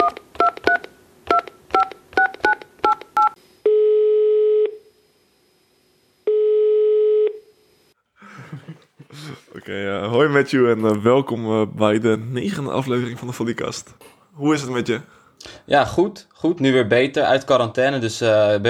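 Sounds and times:
telephone ringing tones: 0.0s - 4.8s, 6.3s - 7.5s
laughter: 8.2s - 9.8s
speech: 9.7s - 18.6s.

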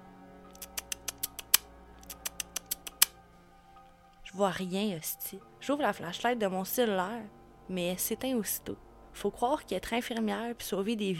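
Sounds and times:
person imitating a squeaky noise for calling a cat in a dark back alley: 0.5s - 3.2s
speech: 4.4s - 11.1s.

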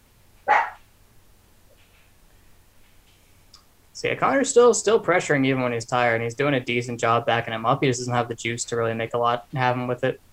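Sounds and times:
dog barking: 0.5s - 0.8s
speech: 4.0s - 10.3s.

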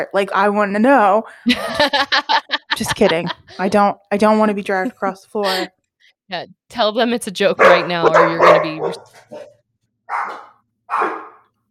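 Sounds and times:
speech: 0.0s - 9.5s, 10.1s - 11.2s
laughter: 1.5s - 3.8s
dog barking: 7.6s - 11.5s.

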